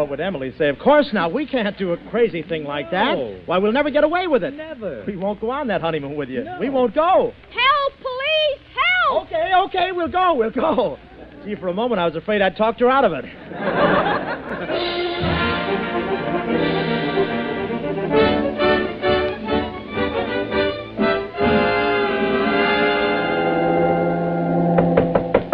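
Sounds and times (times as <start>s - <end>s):
speech: 0.0s - 14.0s
laughter: 13.2s - 16.4s
lively orchestral music passage: 14.5s - 25.5s
knocks on a stateroom door: 24.8s - 25.5s.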